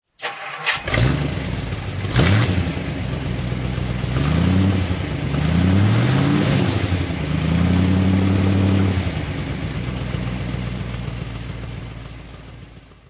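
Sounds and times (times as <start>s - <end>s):
Facel Vega FV3 engine throttle: 0.3s - 12.0s.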